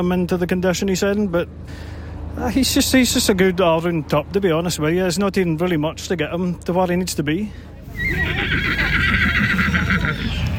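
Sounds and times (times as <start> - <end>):
speech: 0.0 - 8.9
low busy murmur: 7.1 - 10.5
horse whinnying: 7.9 - 10.5.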